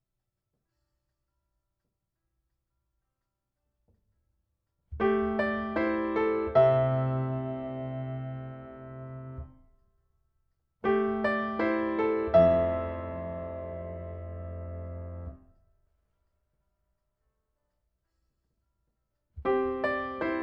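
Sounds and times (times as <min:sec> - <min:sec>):
piano: 0:04.9 - 0:09.7, 0:10.8 - 0:15.6, 0:19.4 - 0:20.4.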